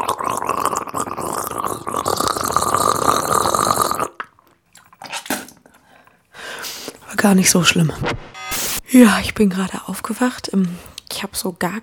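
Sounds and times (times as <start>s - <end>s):
person gargling mouthwash: 0.0s - 4.4s
speech: 7.2s - 8.3s, 8.9s - 11.8s.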